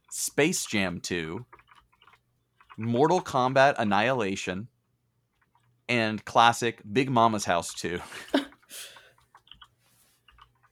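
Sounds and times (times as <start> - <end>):
speech: 0.1 - 1.6, 2.8 - 4.7, 5.9 - 8.9
typing on a computer keyboard: 0.6 - 3.4, 8.5 - 10.7.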